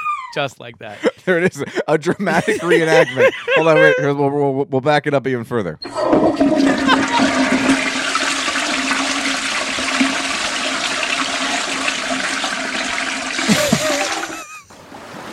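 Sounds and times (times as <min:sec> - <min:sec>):
speech: 0:00.4 - 0:07.6
laughter: 0:00.8 - 0:04.2, 0:06.5 - 0:07.9, 0:13.4 - 0:14.7
toilet flushing: 0:05.8 - 0:14.6.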